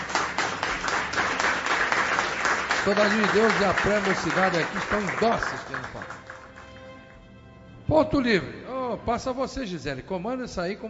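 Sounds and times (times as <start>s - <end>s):
audience applause welcoming a speaker at a gathering: 0.0s - 7.0s
speech: 2.8s - 6.3s, 7.9s - 10.8s.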